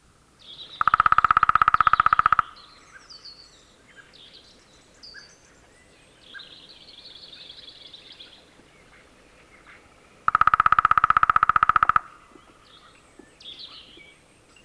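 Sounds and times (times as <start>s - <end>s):
lesser spotted woodpecker drumming in rapid rolls: 0.0s - 3.1s, 8.4s - 14.6s.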